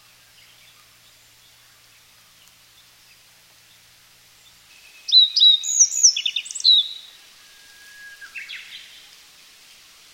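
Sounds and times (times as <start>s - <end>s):
Japanese yellow bunting song with sliding whistles: 4.8s - 8.9s.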